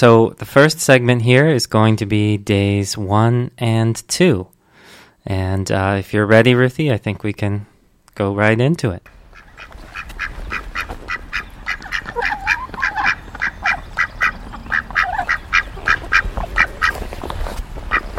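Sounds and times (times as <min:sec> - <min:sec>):
speech: 0:00.0 - 0:04.6, 0:05.2 - 0:10.3
softer warbling bird calls outdoors: 0:09.1 - 0:17.1, 0:17.8 - 0:18.1
ducks quacking outdoors: 0:09.1 - 0:18.1.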